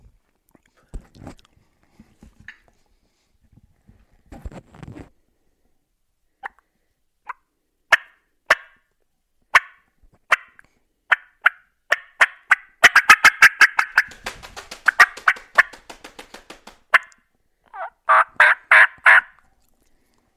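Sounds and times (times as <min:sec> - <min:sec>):
turkey hen fly-down cackle made on a mouth call: 0:07.3 - 0:08.8, 0:09.5 - 0:14.1, 0:14.9 - 0:15.4, 0:17.7 - 0:19.4
turkey hen yelps on mouth call: 0:09.5 - 0:14.1, 0:16.9 - 0:19.4.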